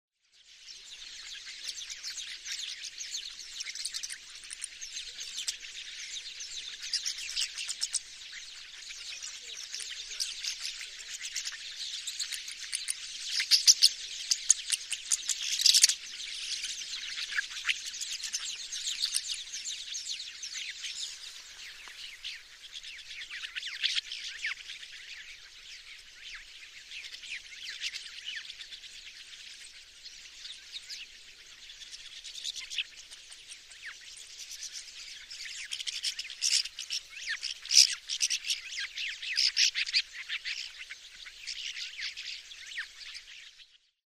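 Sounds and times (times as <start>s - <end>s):
rosy starling call: 1.0s - 29.3s, 30.3s - 43.4s.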